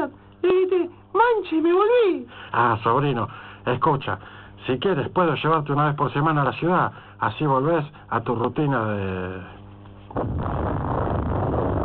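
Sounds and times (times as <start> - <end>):
speech: 1.3 - 10.7
steady low hum at a power plant: 9.8 - 11.8
explosion at a power plant with heavy roaring rumble: 10.1 - 11.8.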